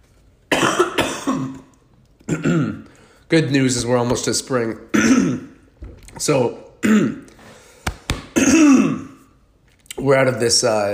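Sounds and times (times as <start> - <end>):
person coughing harshly: 0.5 - 1.7, 2.3 - 2.9, 4.9 - 5.6, 6.8 - 7.4, 8.3 - 9.3
speech: 2.3 - 5.3, 6.2 - 7.2, 10.1 - 10.9.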